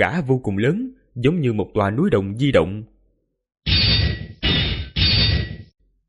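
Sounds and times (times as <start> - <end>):
speech: 0.0 - 2.9
metallic clangs of blows from a copper plaque: 3.7 - 5.7.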